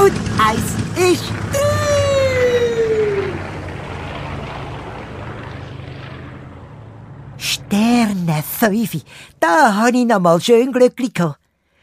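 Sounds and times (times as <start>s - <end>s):
sputtering airplane engine whining and rumbling: 0.0s - 9.4s
speech: 0.1s - 1.4s, 8.6s - 11.4s.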